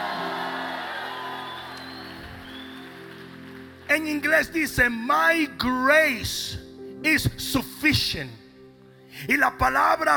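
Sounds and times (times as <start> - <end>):
large crowd shouting and whooping a victory cry: 0.0 - 3.3
speech: 3.9 - 8.4, 9.1 - 10.1.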